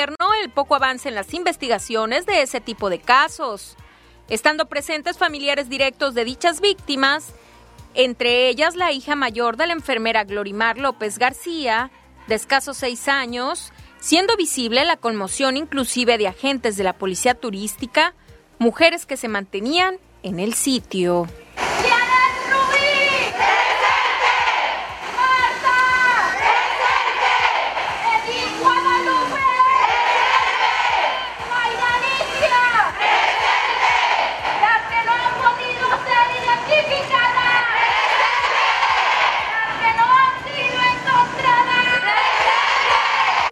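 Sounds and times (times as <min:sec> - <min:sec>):
speech: 0:00.0 - 0:22.0
crowd of women shouting chant-like at a protest: 0:21.6 - 0:43.5.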